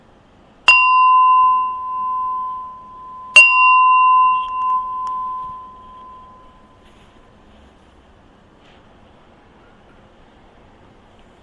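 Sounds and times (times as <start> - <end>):
gong struck to end meditation: 0.7 - 6.9.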